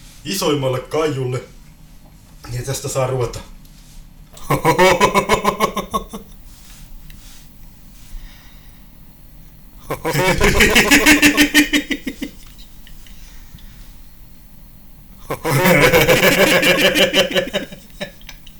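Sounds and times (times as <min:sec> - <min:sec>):
speech: 0:00.2 - 0:01.6, 0:02.4 - 0:03.5, 0:04.5 - 0:06.2, 0:10.0 - 0:11.8, 0:15.5 - 0:17.8
rhythmic pulsing laughter with heavy echo effect: 0:04.4 - 0:06.3, 0:09.9 - 0:13.1, 0:15.2 - 0:18.4.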